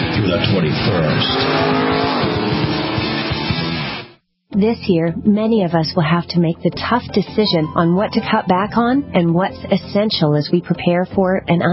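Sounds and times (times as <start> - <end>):
speech: 0.3 - 2.3, 4.6 - 11.7
sports race cars roaring past during a sports car race: 0.5 - 3.8.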